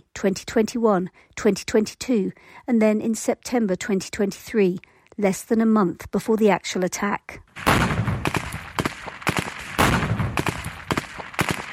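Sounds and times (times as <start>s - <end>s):
speech: 0.2s - 8.0s
gunfire during armed training manoeuvres in mock villages in Gaza: 7.6s - 11.7s.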